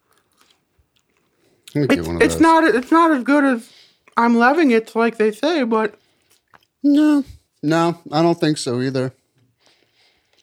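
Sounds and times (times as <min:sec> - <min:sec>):
someone chewing a crisp french fry: 0:00.0 - 0:02.4, 0:06.0 - 0:06.8, 0:10.1 - 0:10.4
speech: 0:01.7 - 0:06.0, 0:06.8 - 0:09.2.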